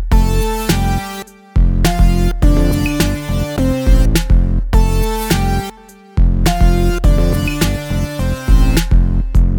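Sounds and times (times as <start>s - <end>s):
simple melody in F major: 0.2s - 9.5s.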